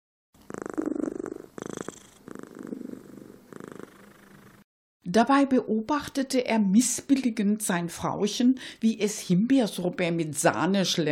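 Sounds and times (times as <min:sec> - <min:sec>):
orange-red tabby tomcat purring in catnip: 0:00.4 - 0:04.7
speech: 0:05.1 - 0:11.1.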